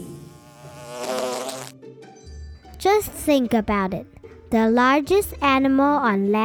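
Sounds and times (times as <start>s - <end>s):
bees buzzing: 0.0s - 1.7s
speech: 2.8s - 6.4s.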